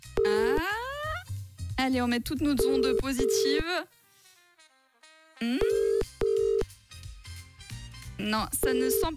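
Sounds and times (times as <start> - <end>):
telephone busy signal beeps: 0.2 - 0.6, 2.6 - 3.6, 5.6 - 6.6, 8.6 - 9.1
speech: 1.8 - 4.0, 5.4 - 5.8, 8.2 - 9.1.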